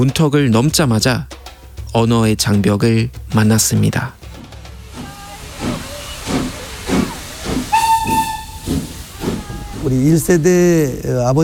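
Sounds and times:
speech: 0:00.0 - 0:04.3, 0:09.8 - 0:11.4
steam train chugging in hissing puffs: 0:00.0 - 0:11.4
loud sustained steam train whistle: 0:04.2 - 0:10.6.

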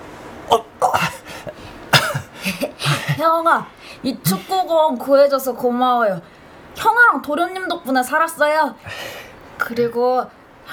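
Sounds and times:
speech: 0:00.5 - 0:00.7, 0:03.2 - 0:10.7
dry hacking cough: 0:00.5 - 0:03.4.

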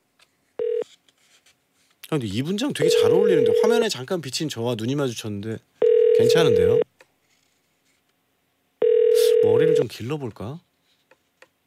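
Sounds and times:
faint noise: 0:00.0 - 0:11.6
electronic telephone dialing tone: 0:00.6 - 0:00.9, 0:02.8 - 0:03.8, 0:05.8 - 0:06.8, 0:08.8 - 0:09.9
speech: 0:02.1 - 0:06.9, 0:10.0 - 0:10.7.

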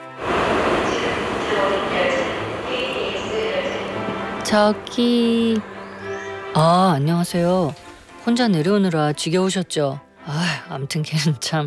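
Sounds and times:
train rumbling through Busan Station in South Korea: 0:00.0 - 0:08.6
indistinct crowd voices murmuring in a train station: 0:00.2 - 0:06.8
speech: 0:04.4 - 0:05.8, 0:06.6 - 0:11.6.

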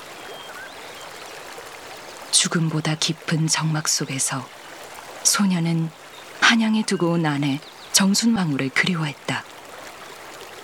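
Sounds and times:
Seogang River rushing at Cheongnyeongpo in Yeongwol: 0:00.0 - 0:10.6
speech: 0:02.4 - 0:04.6, 0:05.2 - 0:09.5.

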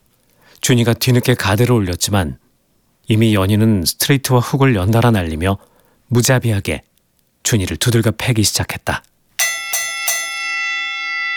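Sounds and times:
speech: 0:00.6 - 0:02.4, 0:03.1 - 0:09.1
boxing ring bell clanging to end a round: 0:09.4 - 0:11.3.

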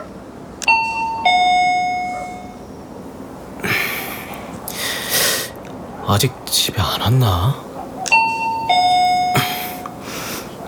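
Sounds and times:
electronic doorbell chiming ding-dong in an old apartment building: 0:00.6 - 0:02.7, 0:08.1 - 0:10.0
quiet breathing: 0:03.6 - 0:05.7, 0:09.2 - 0:10.6
person whispering a question: 0:03.6 - 0:07.6
speech: 0:06.1 - 0:07.7.

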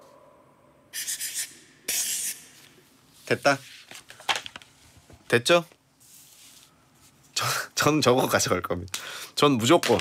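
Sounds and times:
felt-tip marker squeaking and scratching across paper: 0:01.0 - 0:02.6
speech: 0:03.3 - 0:03.7, 0:05.3 - 0:05.8, 0:07.8 - 0:09.9.

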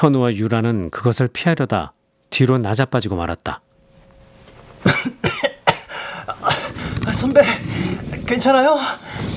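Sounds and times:
speech: 0:00.0 - 0:03.7, 0:07.1 - 0:09.3
person coughing from dust kicked up by a fall: 0:04.8 - 0:06.9.

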